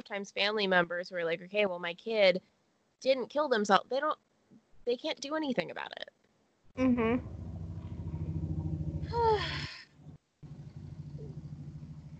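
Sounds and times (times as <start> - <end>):
speech: 0.1 - 6.2, 6.8 - 7.4, 9.1 - 9.7
motorcycle engine droning outside: 6.8 - 12.1.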